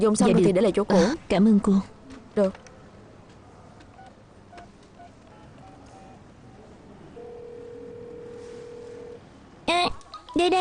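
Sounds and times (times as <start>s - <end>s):
speech: 0.0s - 2.6s, 10.4s - 10.6s
faint hum: 0.0s - 10.6s
short electronic phone keypad beeps while dialing: 4.0s - 5.9s
steady unbroken phone tone: 7.2s - 9.2s.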